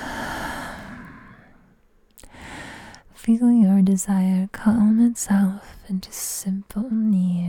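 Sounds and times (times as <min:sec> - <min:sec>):
slow soft breathing in and out: 0:00.0 - 0:03.1
speech: 0:03.2 - 0:07.4.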